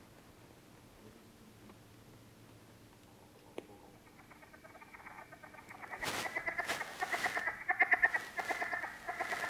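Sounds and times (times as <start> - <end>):
southern leopard frog clucking: 3.2 - 9.4.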